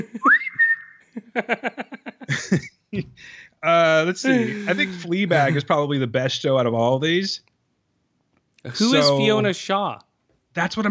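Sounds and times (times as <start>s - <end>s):
speech: 0.0s - 0.2s, 1.4s - 7.5s, 8.6s - 10.8s
laughter: 0.0s - 3.2s, 4.2s - 5.6s, 8.7s - 9.7s
person whistling a tune: 0.2s - 1.0s
rhythmic voiced bursts: 4.3s - 5.6s, 8.7s - 10.0s.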